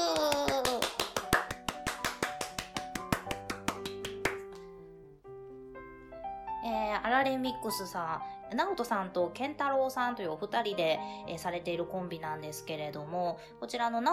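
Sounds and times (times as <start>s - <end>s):
sharp evenly spaced hand claps: 0.0s - 4.7s
bright upbeat music: 0.8s - 4.6s
speech: 7.2s - 14.1s.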